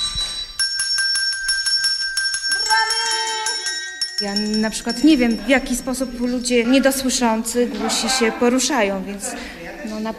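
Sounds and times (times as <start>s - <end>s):
small bell on the floor jingling: 0.0s - 7.5s
speech: 4.2s - 10.1s.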